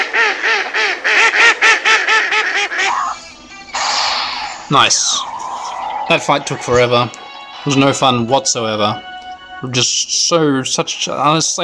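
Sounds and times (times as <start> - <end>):
duck quacking in a nasal series: 0.0 - 5.8
speech: 4.7 - 5.3, 6.1 - 11.6.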